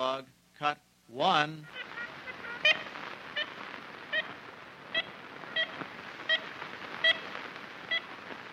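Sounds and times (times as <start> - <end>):
speech: 0.0 - 1.8
constant hiss of a 1930s recording: 0.0 - 8.5
ivory-billed woodpecker nasal tooting calls in a Louisiana hardwood forest: 1.6 - 7.3.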